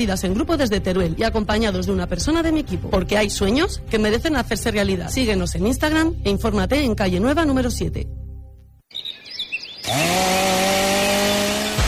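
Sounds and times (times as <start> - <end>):
speech: 0.0 - 8.2
birds chirping: 8.9 - 11.5
chainsaw cutting: 9.8 - 11.8.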